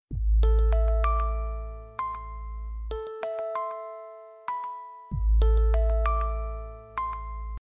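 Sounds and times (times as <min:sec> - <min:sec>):
soft beat SMS alert: 0:00.1 - 0:03.1, 0:05.1 - 0:07.6.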